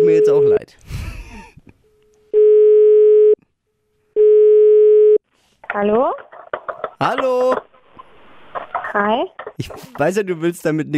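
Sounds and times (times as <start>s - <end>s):
speech: 0.0s - 0.9s, 5.8s - 6.2s, 7.0s - 7.7s, 9.0s - 10.9s
telephone ringing tone on an outgoing call: 2.4s - 3.4s, 4.2s - 5.2s
noisy rustling: 5.3s - 10.2s.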